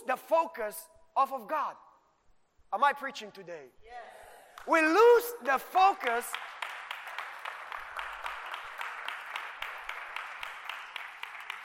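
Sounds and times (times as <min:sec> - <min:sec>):
speech: 0:00.1 - 0:01.9, 0:02.7 - 0:06.4
church congregation applauding during a sermon: 0:04.5 - 0:11.6.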